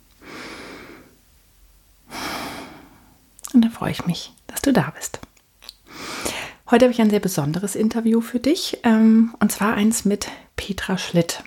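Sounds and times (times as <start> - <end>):
deep breath: 0.2 - 1.2, 2.0 - 3.2, 5.9 - 6.6
speech: 3.7 - 5.3, 6.7 - 11.4.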